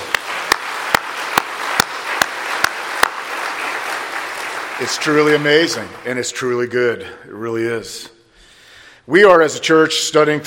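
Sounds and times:
sharp loud claps at a regular beat: 0:00.0 - 0:06.4
audience applauding in a large room: 0:00.0 - 0:06.6
speech: 0:04.8 - 0:08.1, 0:09.1 - 0:10.4.

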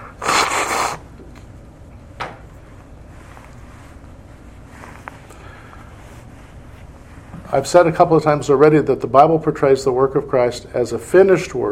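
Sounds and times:
sniff: 0:00.0 - 0:01.0
nose blowing: 0:00.0 - 0:01.2
speech: 0:07.5 - 0:11.7.

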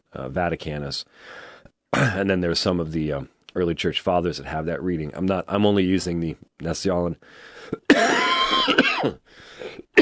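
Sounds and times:
speech: 0:00.1 - 0:10.0
loud raspy throaty cough: 0:02.0 - 0:02.3, 0:07.9 - 0:10.0
brief quieter breathy sound: 0:07.2 - 0:07.9, 0:09.2 - 0:09.9.

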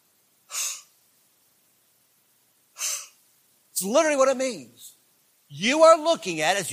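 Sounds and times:
deep inhaling breaths demonstrating inspiration: 0:00.5 - 0:00.9, 0:02.8 - 0:03.2
speech: 0:03.8 - 0:04.9, 0:05.5 - 0:06.7.

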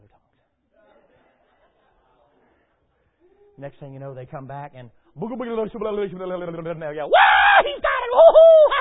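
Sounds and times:
speech: 0:03.6 - 0:08.7
preacher's voice imitating frenzied screaming: 0:07.1 - 0:08.7.

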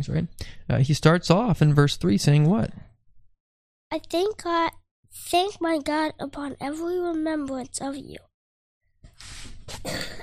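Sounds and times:
speech: 0:00.0 - 0:02.9, 0:03.9 - 0:08.3
person coughing harshly: 0:09.7 - 0:10.2.

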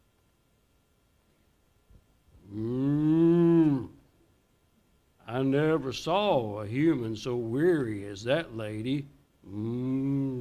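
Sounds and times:
cow mooing: 0:02.5 - 0:04.0
speech: 0:05.4 - 0:10.1.

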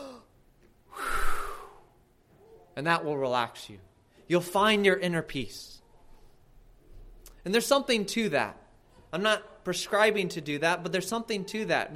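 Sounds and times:
deep breath: 0:00.9 - 0:02.0
speech: 0:02.8 - 0:05.8, 0:07.4 - 0:11.9.

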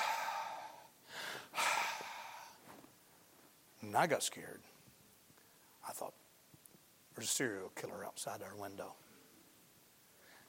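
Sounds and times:
person imitating someone breathing outside a window screen: 0:00.0 - 0:02.6
speech: 0:03.8 - 0:04.7, 0:05.9 - 0:06.2, 0:07.2 - 0:09.0.

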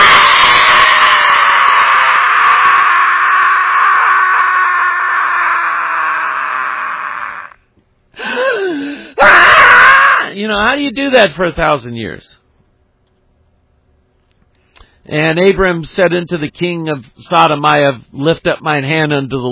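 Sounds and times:
person screaming: 0:00.0 - 0:07.6, 0:08.2 - 0:10.4
speech: 0:10.6 - 0:12.4, 0:15.1 - 0:19.4.

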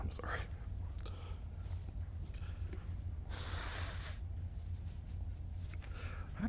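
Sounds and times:
low hum: 0:00.0 - 0:06.4
person blowing their nose: 0:03.3 - 0:04.2.

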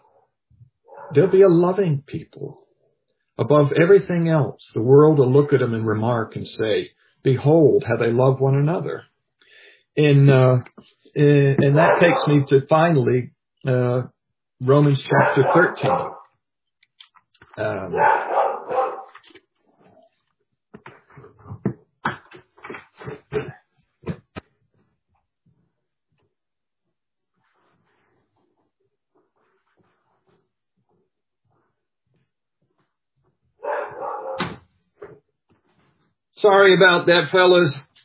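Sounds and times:
escaped dog barking: 0:00.9 - 0:01.2, 0:11.8 - 0:12.4, 0:15.2 - 0:16.3, 0:17.9 - 0:19.2, 0:33.6 - 0:34.5
speech: 0:01.1 - 0:02.6, 0:03.4 - 0:09.1, 0:10.0 - 0:16.2, 0:17.6 - 0:18.3, 0:36.4 - 0:37.9.

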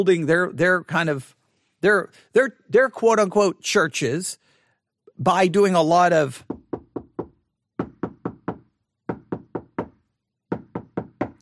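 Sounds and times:
speech: 0:00.0 - 0:04.4, 0:05.2 - 0:06.6
knocking on a door: 0:06.4 - 0:11.4.

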